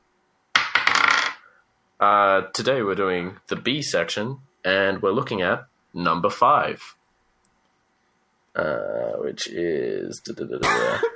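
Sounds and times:
dice clattering across a hard surface: 0.6 - 1.4
speech: 2.0 - 7.0, 8.6 - 11.1.

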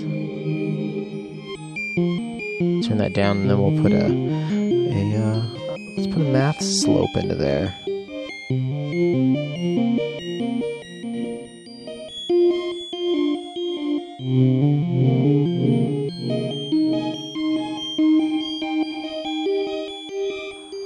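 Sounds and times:
synthesizer melody drenched in washy reverb: 0.0 - 20.8
speech: 3.0 - 7.8.

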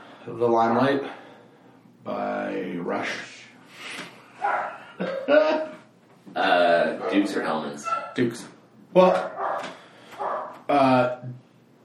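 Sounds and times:
speech: 0.2 - 1.2, 2.0 - 5.7, 6.4 - 9.3
dog barking: 4.4 - 4.9, 7.0 - 8.2, 9.0 - 10.6.

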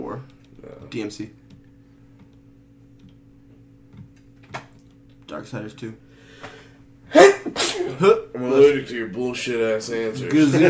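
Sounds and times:
speech: 0.1 - 1.4, 5.3 - 10.6
sneeze: 7.1 - 8.1.

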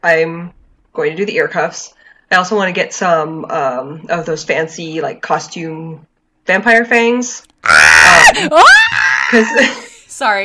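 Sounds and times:
speech: 0.0 - 10.4
man screaming: 7.6 - 9.6.

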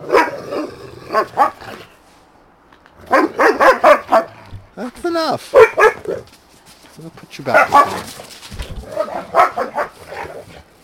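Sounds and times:
dog barking in yappy bursts: 0.0 - 1.6, 3.0 - 4.4, 5.5 - 6.3, 7.5 - 8.1, 8.9 - 10.4
speech: 4.8 - 5.6, 7.3 - 8.2.

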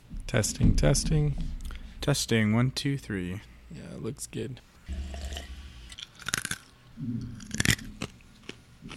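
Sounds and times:
speech: 0.3 - 4.7, 7.0 - 7.6
ice crunched between teeth: 5.9 - 6.7
chewing: 5.9 - 8.9.

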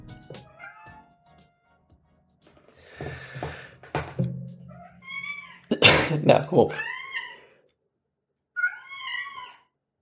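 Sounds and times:
domestic cat meowing: 0.5 - 1.1, 4.7 - 5.7, 6.7 - 7.5, 8.5 - 9.8
person coughing: 5.7 - 6.3
speech: 6.1 - 6.9.

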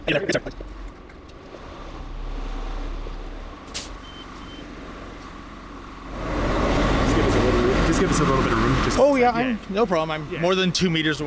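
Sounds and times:
large bus engine idling and rumbling while driving slowly through an industrial parking lot: 0.0 - 11.2
speech: 0.1 - 0.8, 8.0 - 11.2
faint high beeps: 4.0 - 4.7.

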